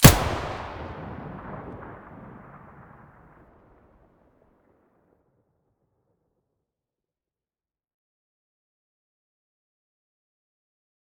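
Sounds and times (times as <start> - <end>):
Vihr gunshot from the muzzle: 0.0 - 2.2.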